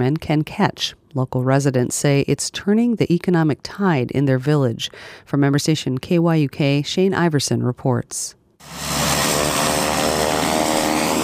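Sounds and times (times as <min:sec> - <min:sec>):
speech: 0:00.0 - 0:09.5
PC-12 turboprop airplane taxiing on runway: 0:08.6 - 0:11.2.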